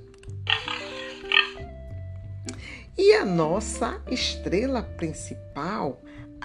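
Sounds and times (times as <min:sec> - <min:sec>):
steady musical backing: 0:00.0 - 0:06.4
pink piglet oinking: 0:00.5 - 0:01.6
speech: 0:03.0 - 0:06.2.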